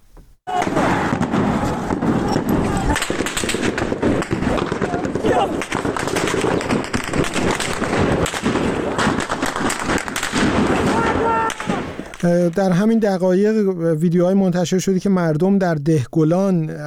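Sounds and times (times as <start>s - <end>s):
protesters' voices taking cover in Piranshahr Iran: 0.5s - 3.2s, 4.4s - 5.6s, 10.6s - 16.8s
sustained bursts of automatic gunfire in Piranshahr Iran: 1.2s - 12.2s
speech: 12.2s - 16.8s.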